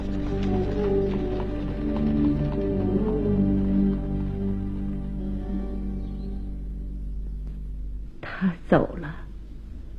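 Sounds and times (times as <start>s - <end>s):
hooves of a horse drawing a carriage clip-clopping at a trot: 0.0s - 5.6s
constant low drone: 0.0s - 9.9s.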